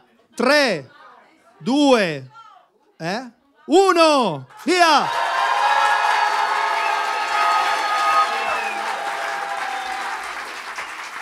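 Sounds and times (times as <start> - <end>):
speech: 0.4 - 1.0, 1.6 - 2.4, 3.0 - 5.2
audience cheering: 4.6 - 11.1
loud audience applause: 4.7 - 11.1.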